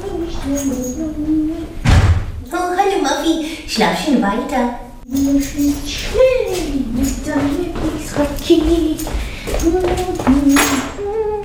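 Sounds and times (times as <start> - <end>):
speech: 0.4 - 1.6, 3.0 - 10.9
door thudding against something: 1.8 - 2.4.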